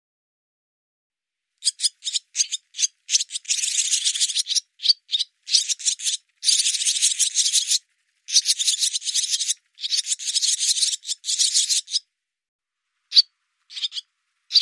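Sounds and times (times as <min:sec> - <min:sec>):
barn swallow chattering in dense rasping rattles: 0:01.7 - 0:12.0.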